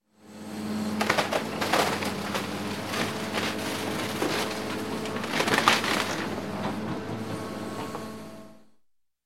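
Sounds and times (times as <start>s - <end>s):
bulldozer crushing wooden beams: 0.8s - 8.2s.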